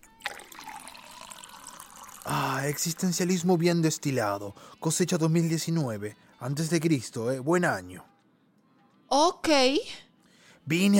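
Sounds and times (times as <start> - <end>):
liquor poured from a bottle: 0.0 - 3.2
speech: 2.2 - 8.1, 9.1 - 10.0, 10.6 - 10.9.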